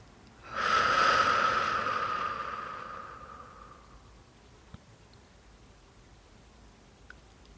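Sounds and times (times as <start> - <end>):
slow steady exhale of breath: 0.4 - 4.2.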